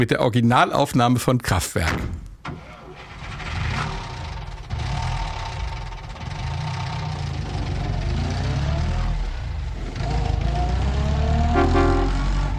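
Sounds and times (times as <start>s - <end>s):
speech: 0.0s - 2.3s
car engine starting, revving and pulling away: 3.0s - 12.5s.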